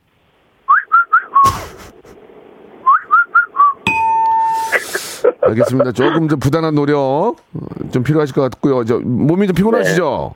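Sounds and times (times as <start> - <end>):
person whistling an imitation of mountain birdsong: 0.7 - 1.5, 2.8 - 3.8
laughter: 4.7 - 6.4
speech: 5.4 - 10.3.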